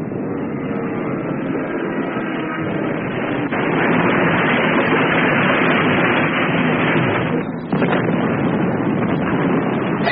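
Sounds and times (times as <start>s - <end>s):
German bomber crashing with heavy roaring rush: 0.0s - 10.0s
continuous rumble of wreckage crashing onto a fishing jetty: 2.6s - 10.0s.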